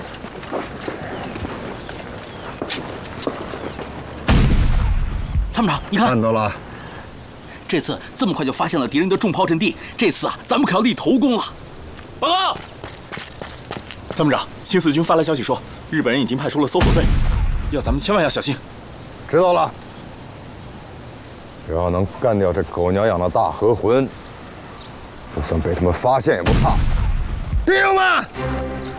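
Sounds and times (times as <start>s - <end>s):
distant heavy rumbling artillery fire: 2.6s - 6.1s, 16.8s - 18.4s, 26.4s - 27.8s
men talking urgently: 5.4s - 12.8s, 14.1s - 19.9s, 21.6s - 24.3s, 25.2s - 28.6s.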